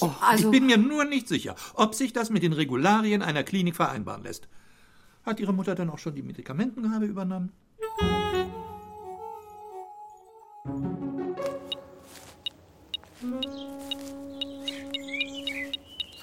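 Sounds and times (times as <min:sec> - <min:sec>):
speech: 0:00.0 - 0:04.6, 0:05.2 - 0:08.2
metal detector beeping: 0:11.6 - 0:16.2.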